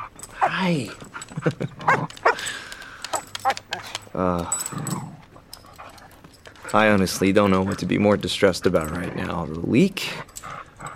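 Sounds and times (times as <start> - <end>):
dog panting and snuffling excitedly: 0.0 - 10.9
jingle of tags or keys: 0.0 - 10.9
speech: 0.6 - 2.7, 3.4 - 5.0, 6.7 - 10.3
person laughing: 1.3 - 2.5.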